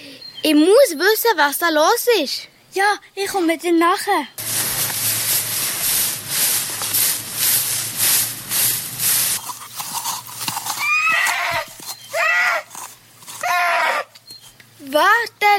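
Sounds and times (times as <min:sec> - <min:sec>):
speech: 0:00.4 - 0:04.4
hoofbeats of a horse on the move: 0:04.4 - 0:13.6
horse whinnying with shrill wavering neighs: 0:10.4 - 0:14.2.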